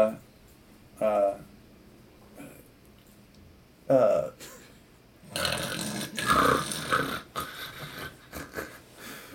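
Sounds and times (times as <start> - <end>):
person imitating snoring: 5.3 - 7.9.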